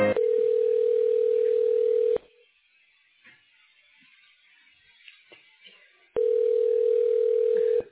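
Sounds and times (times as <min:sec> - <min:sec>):
telephone dial tone after a call is hung up: 0:00.2 - 0:02.2, 0:06.2 - 0:07.8.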